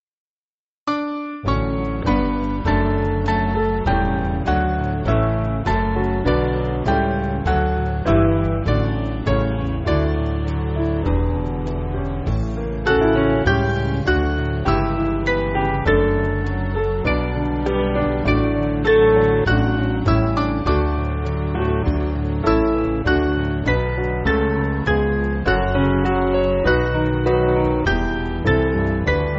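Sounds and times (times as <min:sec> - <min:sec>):
piano backing music for churches: 0:00.9 - 0:29.3.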